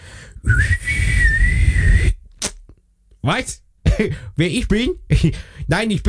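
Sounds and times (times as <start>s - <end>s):
whistled answering machine beep tone: 0.4s - 2.2s
speech: 3.2s - 6.0s.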